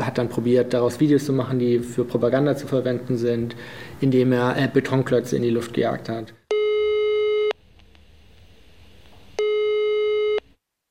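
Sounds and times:
faint hiss: 0.0 - 10.8
speech: 0.2 - 6.4
telephone line ringback tones while calling for a phone interview: 6.5 - 7.6, 9.4 - 10.5.

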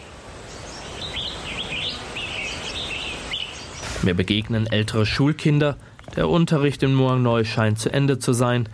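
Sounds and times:
birds chirping and twittering in a forest: 0.0 - 6.7
soft outdoor noise: 0.0 - 8.7
speech: 4.0 - 8.7.

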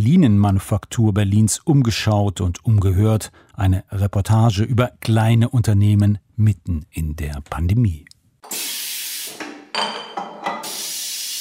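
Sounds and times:
speech: 0.0 - 8.6
stainless steel bottling machine pressing crown caps onto beer bottles at a small brewery: 8.4 - 9.5, 10.4 - 11.4.

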